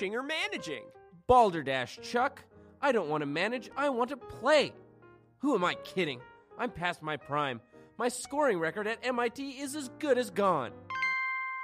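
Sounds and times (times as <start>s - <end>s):
speech: 0.0s - 4.8s, 5.4s - 10.8s
bright ding-dong chime sound effect marking a true fact: 10.9s - 11.6s.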